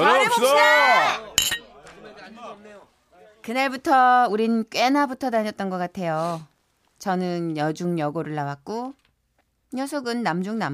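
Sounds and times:
speech: 0.0 - 1.6, 2.3 - 9.0, 9.7 - 10.7
several voices calling out together: 0.0 - 3.4
glasses clinking in a toast at a university freshman welcome party: 1.4 - 1.7.

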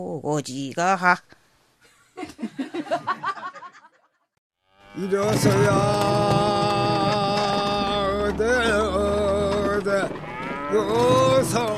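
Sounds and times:
speech: 0.0 - 1.4, 5.0 - 7.2, 9.8 - 11.7
laughter: 2.1 - 4.2
ox lowing loudly during ox-cart driving song: 4.7 - 11.7.

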